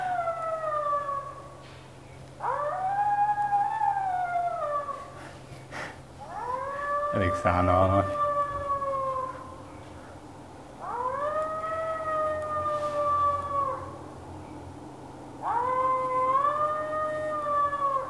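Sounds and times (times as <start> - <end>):
three-month-old wolf pup howling: 0.0 - 1.6, 2.4 - 5.3, 6.2 - 9.6, 10.8 - 14.0, 15.4 - 18.0
faint steady hum: 0.0 - 18.0
speech: 7.2 - 8.2.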